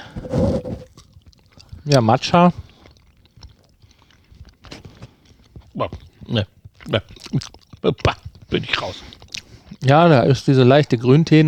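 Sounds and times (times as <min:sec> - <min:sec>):
chewing and biting a mugwort-flavoured minty candy: 0:00.1 - 0:09.8
speech: 0:00.2 - 0:00.9, 0:01.8 - 0:02.7, 0:05.8 - 0:09.2, 0:09.8 - 0:11.4.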